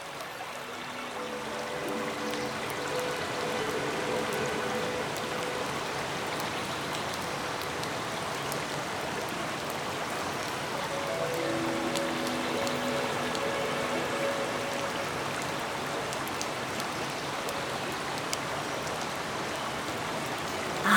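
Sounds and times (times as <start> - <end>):
waterfall rushing: 0.1 - 20.9.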